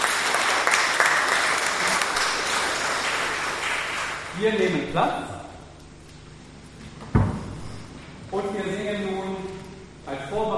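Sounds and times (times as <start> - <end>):
crowd applauding: 0.0 - 4.7
speech: 4.4 - 5.4, 8.3 - 9.1.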